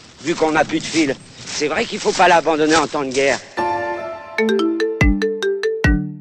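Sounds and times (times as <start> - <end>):
speech: 0.2 - 3.5, 4.4 - 4.6
telephone ringing with a melodic electronic ringtone: 3.6 - 6.1.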